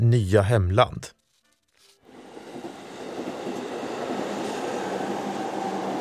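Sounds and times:
speech: 0.0 - 1.2
train rolling along the rails: 2.1 - 5.9.

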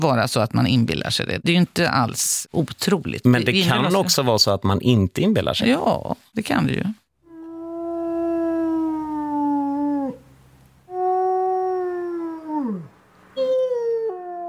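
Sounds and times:
speech: 0.0 - 7.0
wolf howling: 7.3 - 14.4.

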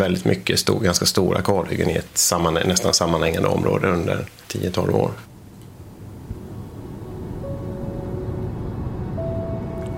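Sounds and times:
speech: 0.0 - 5.3
faint whining tone rising in pitch: 5.3 - 9.9
car driving along a road: 5.7 - 9.9.

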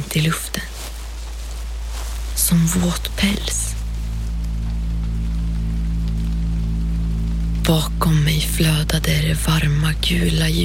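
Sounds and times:
low constant hum: 0.0 - 10.6
steady rain falling outside a cabin amid fog pitting the ground: 0.0 - 10.6
speech: 0.1 - 0.7, 2.4 - 3.8, 7.7 - 10.6.

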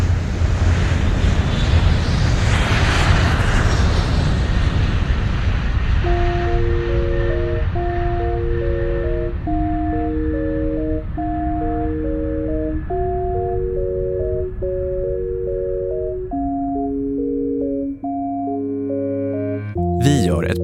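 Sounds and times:
jet-engine roar of airplanes taking off: 0.0 - 8.3
simple tonal melody: 6.0 - 20.6.

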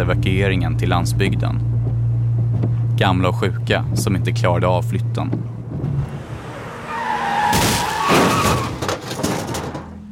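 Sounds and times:
speech: 0.0 - 1.7, 3.0 - 5.6
rattling thuds: 1.8 - 3.0, 5.2 - 6.2, 7.4 - 10.1
car braking hard and skidding with tires squealing: 5.4 - 10.0.

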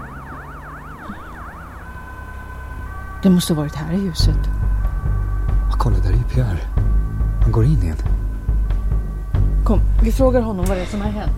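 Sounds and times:
ambulance siren wailing as the ambulance drives away: 0.0 - 8.9
low rumble of traffic: 0.0 - 11.3
speech: 3.2 - 4.6, 6.0 - 6.8, 7.5 - 8.2, 9.7 - 11.3.

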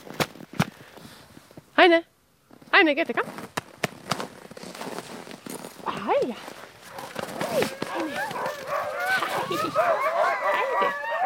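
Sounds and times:
speech: 1.8 - 2.1, 2.8 - 3.6, 6.0 - 6.6, 7.5 - 8.7
pack of sled dogs harnessed to a sled barking, yipping and howling: 6.8 - 11.2.

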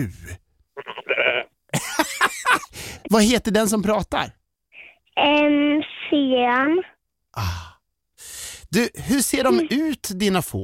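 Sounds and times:
speech: 0.0 - 0.4, 3.1 - 4.4, 5.2 - 7.7, 8.7 - 10.6
sheep bleating: 0.8 - 1.6.

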